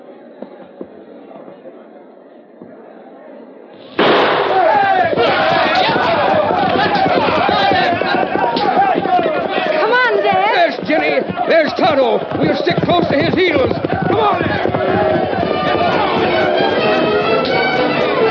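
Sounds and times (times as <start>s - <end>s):
sustained roar of crowd commotion at a land rush: 3.8s - 18.2s
signal gunshot starting a land rush for homestead claims: 3.9s - 4.9s
speech: 11.5s - 15.2s.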